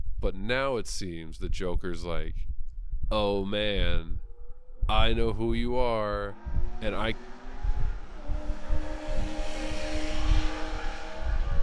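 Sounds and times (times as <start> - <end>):
speech: 0.2 - 2.5, 3.1 - 4.2, 4.9 - 7.3
Lamborghini sports car engine revving outside: 3.5 - 11.6.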